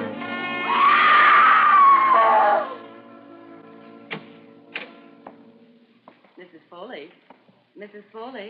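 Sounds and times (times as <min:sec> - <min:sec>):
woman screaming high-pitched: 0:00.7 - 0:02.8.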